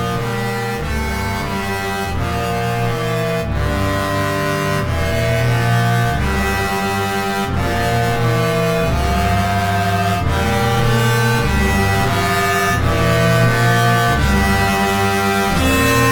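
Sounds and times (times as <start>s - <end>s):
synthesizers: 0.1s - 16.1s
unknown instruments: 6.5s - 16.1s.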